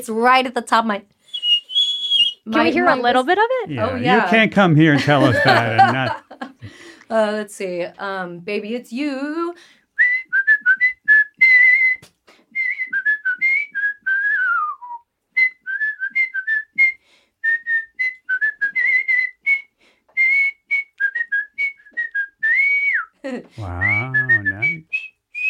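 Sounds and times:
speech: 0.0s - 1.2s, 2.4s - 9.8s
person whistling a song's vocal melody: 1.3s - 2.9s, 10.0s - 25.4s
laughter: 6.8s - 9.2s.

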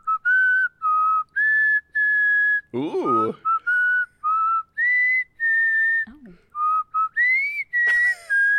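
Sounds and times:
person whistling a birthday song melody: 0.0s - 8.5s
speech: 2.7s - 3.5s
spoken exclamation: 2.8s - 3.4s.

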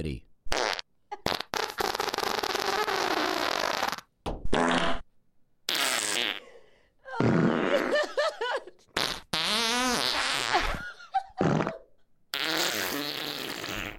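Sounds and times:
speech: 0.0s - 0.3s
recorded fart sound effects: 0.5s - 5.1s, 5.7s - 6.4s, 7.2s - 8.0s, 9.0s - 10.8s, 11.4s - 13.9s.

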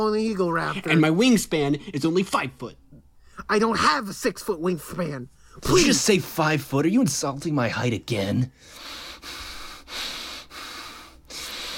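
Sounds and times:
speech: 0.0s - 2.8s, 3.5s - 9.4s
heavy rasping wheezing breaths: 8.6s - 11.7s.

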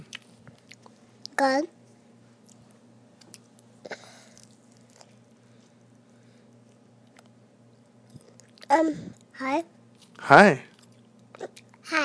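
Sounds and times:
child chewing a fresh strawberry: 0.0s - 1.4s, 2.4s - 7.4s, 8.0s - 9.3s, 10.0s - 11.9s
child's voice: 1.3s - 1.8s, 8.6s - 9.8s, 11.4s - 12.0s
speech: 1.4s - 1.8s, 8.7s - 10.7s.

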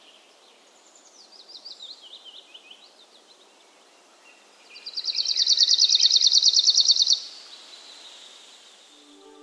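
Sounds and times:
Arctic warbler singing in forest thickets: 4.9s - 7.3s.

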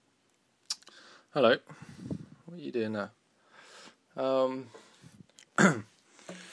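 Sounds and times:
speech: 1.3s - 3.2s, 4.2s - 4.8s, 5.6s - 5.9s
harsh cough: 5.6s - 5.9s
voiced throat clearing: 5.6s - 5.9s.

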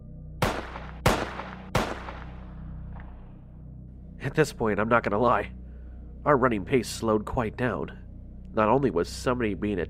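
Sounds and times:
gunshots: 0.4s - 3.2s
speech: 4.2s - 5.6s, 6.2s - 9.8s.

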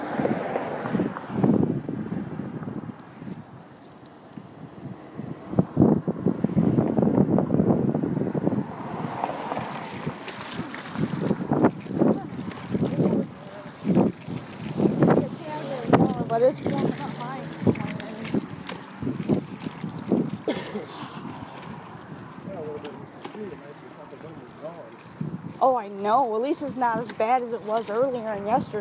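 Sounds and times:
wind buffeting an outdoor microphone: 0.0s - 28.7s
speech: 26.0s - 28.7s.

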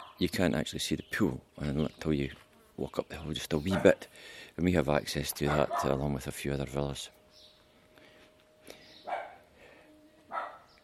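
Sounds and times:
speech: 0.2s - 7.2s
dog barking: 3.7s - 4.0s, 5.4s - 6.0s, 9.0s - 9.5s, 10.3s - 10.7s
dog yipping: 5.5s - 6.0s, 9.0s - 9.4s, 10.3s - 10.7s.

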